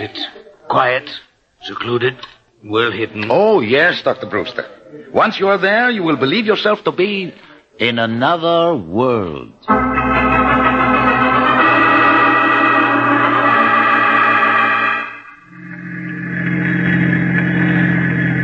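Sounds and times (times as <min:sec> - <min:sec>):
speech: 0:00.0 - 0:10.0
car engine droning as the vehicle slows on the road: 0:09.7 - 0:18.4.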